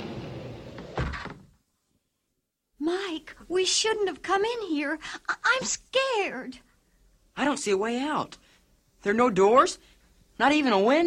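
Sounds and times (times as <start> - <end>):
hidden gallery wall sliding closed: 0.0 - 1.6
speech: 3.2 - 6.7, 7.4 - 8.4, 9.0 - 11.0.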